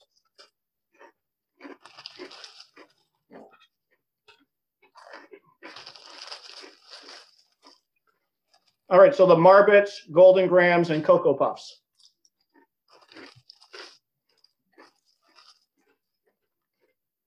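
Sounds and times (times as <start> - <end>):
crunching and chewing cereal pieces: 0.0 - 3.6, 4.3 - 9.0, 11.8 - 17.2
speech: 8.9 - 11.8.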